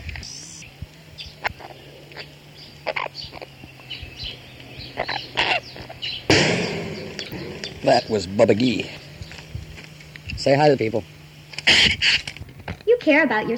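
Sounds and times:
bird chirps and calls: 0.0s - 10.5s
low hum: 0.0s - 13.5s
steady insect buzz: 0.0s - 13.5s
speech: 7.9s - 9.0s, 10.4s - 11.1s, 13.0s - 13.5s.

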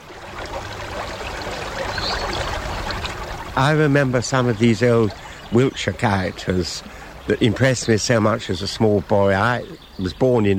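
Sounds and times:
river flowing with a bubbling, gurgling rush: 0.0s - 10.5s
speech: 3.6s - 10.5s.

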